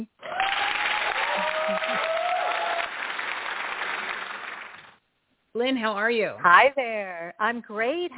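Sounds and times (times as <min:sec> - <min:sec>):
studio audience applause welcoming a guest: 0:00.2 - 0:04.9
speech: 0:05.6 - 0:08.1.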